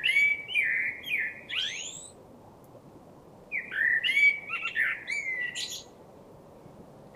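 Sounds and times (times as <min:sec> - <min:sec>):
Common blackbird Turdus merula warbling fluty notes: 0:00.0 - 0:02.2, 0:03.5 - 0:05.9.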